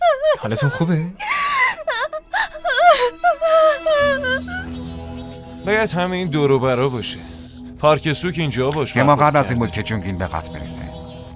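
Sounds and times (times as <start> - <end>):
person sobbing and whimpering: 0.0 - 4.7
speech: 0.4 - 1.4, 5.6 - 11.0.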